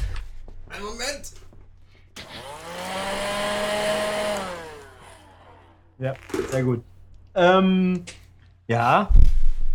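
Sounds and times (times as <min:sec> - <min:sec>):
speech: 0:00.8 - 0:01.5, 0:06.0 - 0:09.2
vacuum cleaner running: 0:02.2 - 0:05.8.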